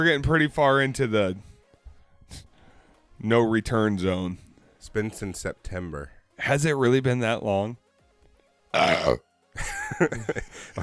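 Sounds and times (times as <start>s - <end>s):
speech: 0.0s - 1.5s, 2.3s - 2.5s, 3.2s - 7.8s, 8.7s - 10.8s
loud raspy burp and gurgling voiced belch: 8.7s - 9.2s.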